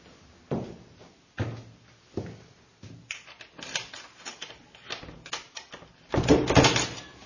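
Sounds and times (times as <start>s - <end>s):
front door rattling as it swings shut: 6.1s - 7.0s.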